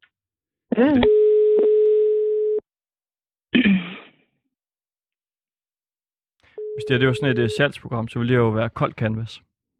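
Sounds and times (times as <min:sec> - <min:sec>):
speech: 0:00.8 - 0:01.2, 0:06.9 - 0:09.5
telephone dial tone while placing a call: 0:01.0 - 0:02.6, 0:06.6 - 0:07.6.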